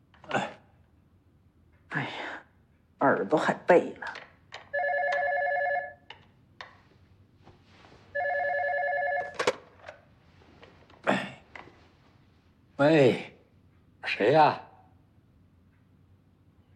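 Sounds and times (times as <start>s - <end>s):
speech: 3.2s - 4.2s, 12.8s - 13.2s, 14.3s - 14.7s
telephone ringing: 4.7s - 6.2s, 8.1s - 9.7s.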